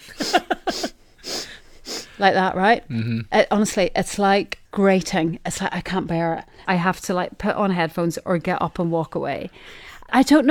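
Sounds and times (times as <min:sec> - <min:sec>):
person imitating repeated nasal sniffing: 0:00.0 - 0:02.2, 0:02.9 - 0:03.3
speech: 0:02.2 - 0:10.5.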